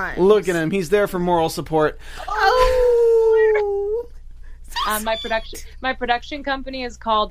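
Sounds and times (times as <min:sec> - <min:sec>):
speech: 0:00.0 - 0:02.8, 0:04.8 - 0:07.2
dog whimpering: 0:02.3 - 0:04.1, 0:04.7 - 0:05.7.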